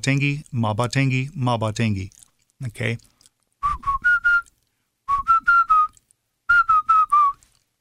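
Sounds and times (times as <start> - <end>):
speech: 0.0 - 3.1
person whistling tonal tunes of spoken syllables: 3.6 - 4.5, 5.1 - 7.4.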